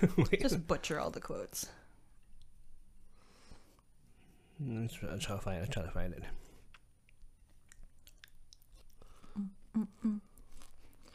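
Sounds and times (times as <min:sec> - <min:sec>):
speech: 0:00.0 - 0:01.8, 0:04.6 - 0:06.4, 0:09.4 - 0:10.3
person chewing with wet mastication: 0:06.6 - 0:11.1.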